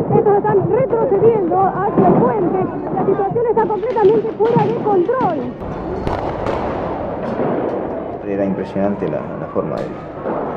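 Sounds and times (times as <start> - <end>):
speech: 0.2 - 7.6, 8.3 - 10.2
gunshots fired by police, echoing: 2.0 - 10.5
constant dense roar of outdoor noise: 5.6 - 10.5.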